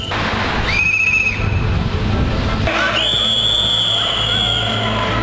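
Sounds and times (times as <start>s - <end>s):
wrestling referee's whistle blasts: 0.0s - 1.8s, 2.7s - 5.1s.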